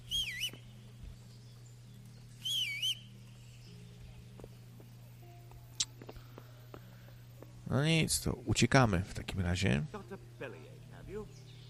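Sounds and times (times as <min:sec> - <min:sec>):
warbling whistles: 0:00.0 - 0:00.6, 0:02.4 - 0:03.1
low hum: 0:00.0 - 0:11.6
speech: 0:07.7 - 0:10.2.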